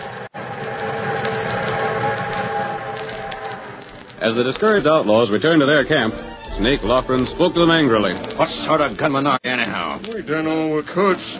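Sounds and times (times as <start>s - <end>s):
eastbound train thundering along the tracks: 0.0s - 8.7s
speech: 4.2s - 11.3s.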